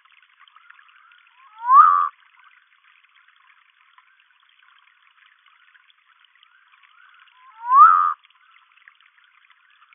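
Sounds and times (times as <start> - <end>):
Humayun's night frog Nyctibatrachus humayuni giving a whistled note and buzzy tone: 1.4 - 2.1, 7.4 - 8.2.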